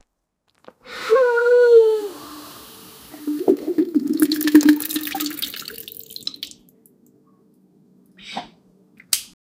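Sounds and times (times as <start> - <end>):
woman vomiting into a sink: 3.3 - 6.5.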